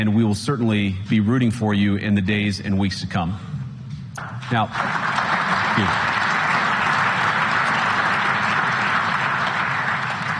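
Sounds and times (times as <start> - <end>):
speech: 0.0 - 3.6, 4.2 - 5.1, 5.8 - 6.2
large crowd applauding: 4.5 - 10.3.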